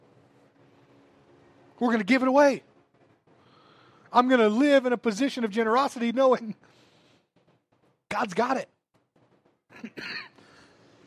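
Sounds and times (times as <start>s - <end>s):
speech: 1.8s - 2.7s, 4.1s - 6.8s, 8.1s - 8.8s, 9.8s - 10.3s
person coughing harshly: 9.8s - 10.4s.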